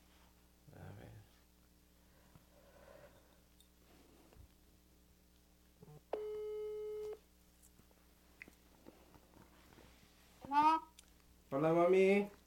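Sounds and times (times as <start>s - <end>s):
phone ringback tone during a call being placed: 6.1s - 7.2s
speech: 11.5s - 12.4s.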